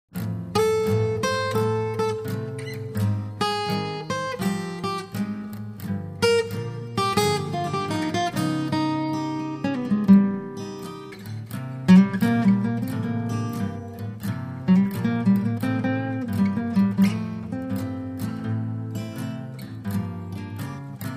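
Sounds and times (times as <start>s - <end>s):
steel guitar: 0.2s - 21.1s.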